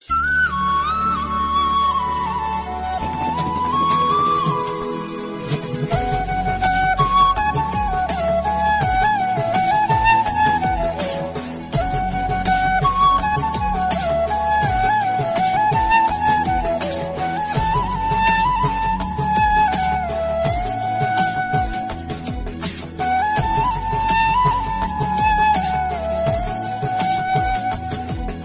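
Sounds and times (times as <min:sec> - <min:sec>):
instrumental flute ringtone: 0:00.0 - 0:28.4.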